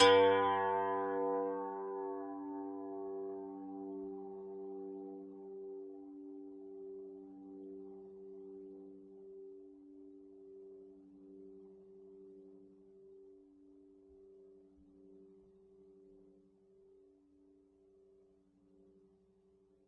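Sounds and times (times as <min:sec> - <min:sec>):
zither multisample: 0:00.0 - 0:07.7.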